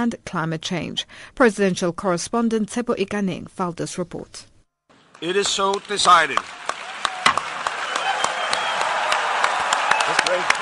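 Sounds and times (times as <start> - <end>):
speech: 0.0 - 4.5, 5.2 - 6.8, 10.1 - 10.6
large crowd of assembly delegates applauding: 5.0 - 10.6.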